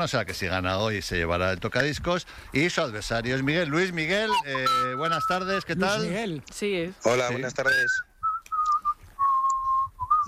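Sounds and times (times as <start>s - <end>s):
speech: 0.0s - 8.1s
person whistling clear steady tones: 4.3s - 5.6s, 7.7s - 10.2s.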